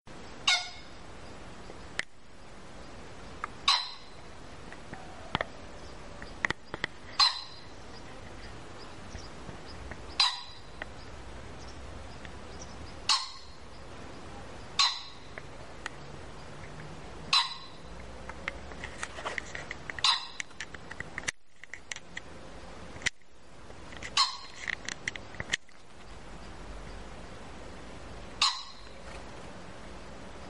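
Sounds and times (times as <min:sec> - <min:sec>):
pheasant: 0:00.4 - 0:01.0, 0:02.8 - 0:21.0, 0:23.9 - 0:27.0, 0:28.3 - 0:29.4.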